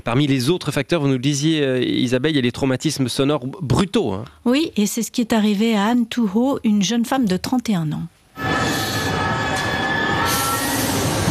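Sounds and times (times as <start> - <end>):
speech: 0.0 - 8.2
metro train wheels squealing under hard braking in Paris: 8.4 - 11.2
metro train carriages rumbling in Paris: 8.8 - 11.2.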